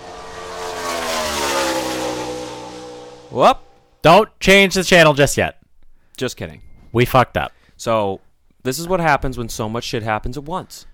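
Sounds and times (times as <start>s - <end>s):
car engine revving: 0.0s - 4.0s
speech: 3.3s - 5.6s, 6.2s - 10.9s.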